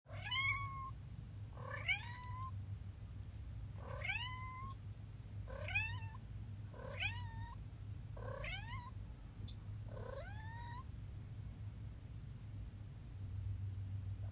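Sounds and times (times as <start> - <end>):
cat giving rising meows: 0.1 - 0.9, 1.6 - 2.5, 3.8 - 4.8, 5.5 - 6.2, 6.8 - 7.6, 8.2 - 9.0, 10.0 - 10.8
constant low background hum: 0.1 - 14.2.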